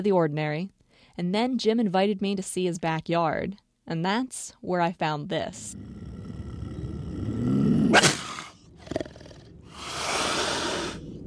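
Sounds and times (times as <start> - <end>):
speech: 0.0 - 6.0
Florida panther growling and snarling in a backyard: 5.6 - 11.2.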